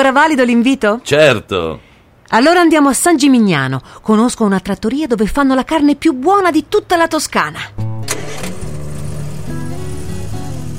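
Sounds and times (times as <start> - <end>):
speech: 0.0 - 7.8
car engine starting and idling: 7.8 - 10.7.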